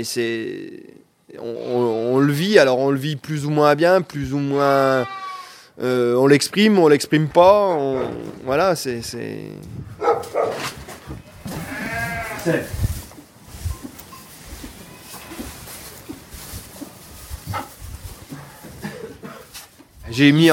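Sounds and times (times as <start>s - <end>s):
speech: 0.0s - 5.2s, 5.8s - 9.9s, 12.4s - 12.8s, 20.2s - 20.5s
dairy ewes bleating indoors at night on a farm: 4.8s - 5.6s, 11.2s - 12.7s, 14.6s - 15.7s.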